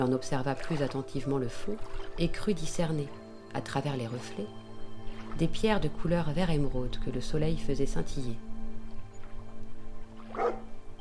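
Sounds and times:
speech: 0.0 - 4.6, 5.4 - 8.5
dog barking while moving away: 10.3 - 10.6.

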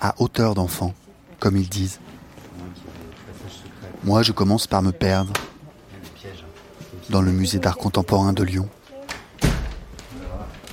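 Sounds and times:
speech: 0.0 - 2.2, 4.0 - 5.4, 7.1 - 8.8
faint voices murmuring: 0.6 - 10.7
door closing with a thud in a contemporary art museum: 9.4 - 10.0.

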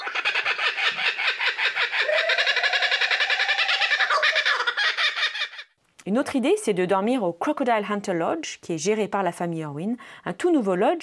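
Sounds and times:
dense chorus of birds calling and squawking: 0.0 - 5.7
speech: 6.1 - 11.0.

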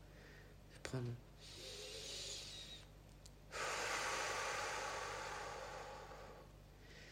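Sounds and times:
speech: 0.9 - 1.6
woman taking a slow deep relaxing breath: 1.4 - 2.8, 3.5 - 7.0.

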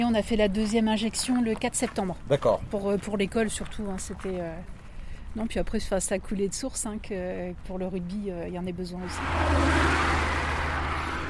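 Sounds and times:
speech: 0.0 - 10.2
road noise: 0.0 - 11.2
car engine humming while cruising along a road: 8.8 - 11.2.

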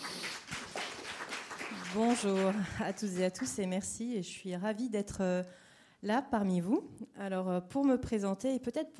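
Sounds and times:
audience applause for a speaker being introduced: 0.0 - 3.6
speech: 1.9 - 8.9.

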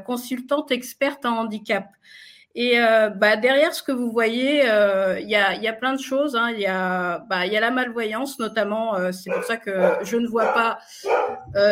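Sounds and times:
speech: 0.0 - 11.7
guide dog barking: 9.3 - 11.5.

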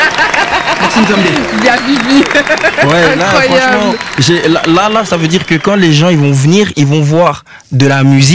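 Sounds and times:
people laughing: 0.0 - 5.5
single person clapping hands: 0.0 - 5.8
speech: 1.0 - 8.3.

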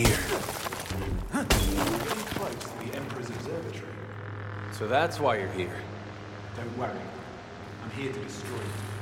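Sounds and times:
hardened amber shattering: 0.0 - 3.3
speech: 4.8 - 5.9, 6.6 - 7.2, 7.8 - 8.9.

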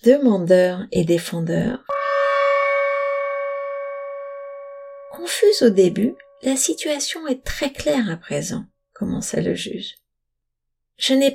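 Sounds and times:
speech: 0.0 - 2.0, 5.2 - 10.0, 11.0 - 11.3
struck gong ringing: 1.9 - 7.6.

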